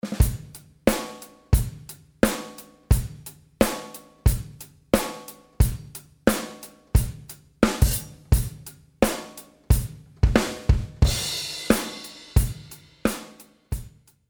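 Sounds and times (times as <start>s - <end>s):
drum loop with reverb: 0.0s - 14.0s.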